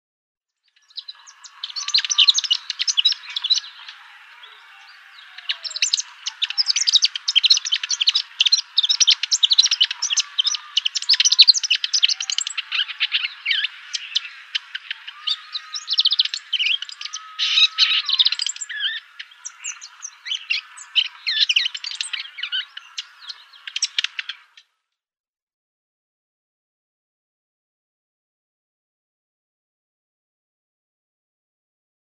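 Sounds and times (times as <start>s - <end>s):
Palestine sunbird singing: 0.6s - 24.7s.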